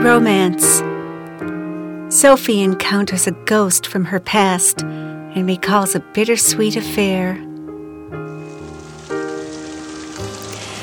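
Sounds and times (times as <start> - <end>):
speech: 0.0 - 1.5, 2.1 - 7.5
steady rain pattering on a hard surface on a late October afternoon: 8.4 - 10.8.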